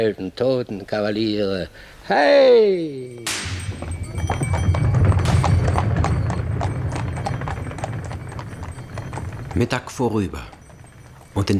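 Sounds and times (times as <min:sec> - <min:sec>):
speech: 0:00.0 - 0:04.5, 0:09.6 - 0:10.6, 0:11.4 - 0:11.5
horse hooves clip-clopping: 0:03.2 - 0:11.5
low rumbling background: 0:03.4 - 0:11.5.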